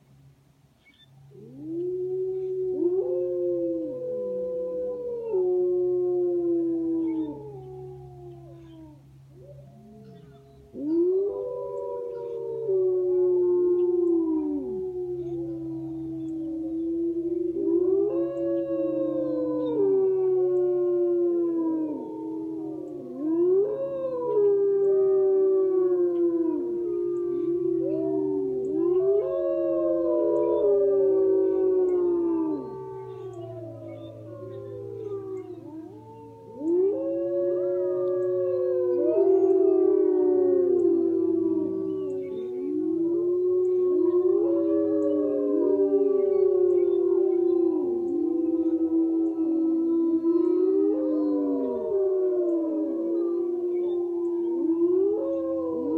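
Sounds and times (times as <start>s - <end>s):
wolves howling: 0.1s - 55.9s.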